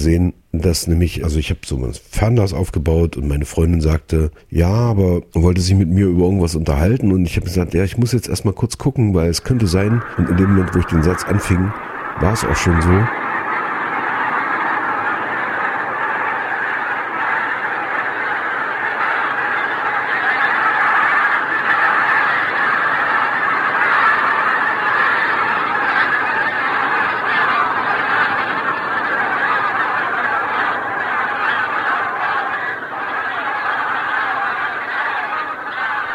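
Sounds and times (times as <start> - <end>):
speech: 0.0 - 13.2
gulls calling as they take flight: 6.2 - 36.1
thousands of geese honking as they take flight over a bay: 9.0 - 36.1
lapwings calling as they take flight: 9.2 - 36.1.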